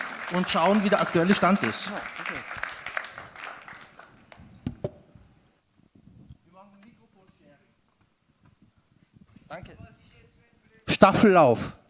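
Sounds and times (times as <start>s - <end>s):
audience applause: 0.0s - 4.5s
speech: 0.3s - 2.7s, 11.0s - 11.8s.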